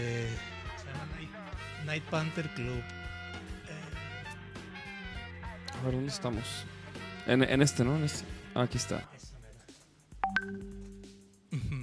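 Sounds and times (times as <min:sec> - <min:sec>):
speech: 0:01.9 - 0:03.0, 0:05.8 - 0:09.2
WhatsApp message notification tones: 0:10.2 - 0:10.9.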